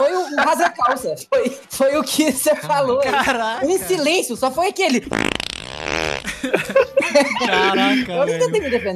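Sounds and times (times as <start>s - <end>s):
speech: 0.4s - 5.5s, 6.4s - 8.9s
voice imitating a loud buzzy fart: 5.1s - 6.3s
laughter: 6.2s - 8.9s.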